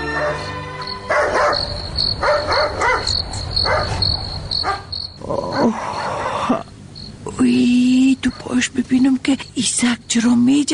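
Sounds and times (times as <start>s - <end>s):
dog barking at night: 0.1s - 4.9s
high chorus of chirping crickets: 0.1s - 10.7s
brief voices: 5.2s - 10.7s.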